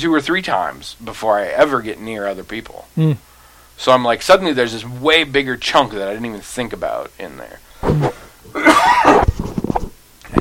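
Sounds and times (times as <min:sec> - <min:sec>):
speech: 0:00.0 - 0:08.6
person coughing: 0:07.9 - 0:09.3.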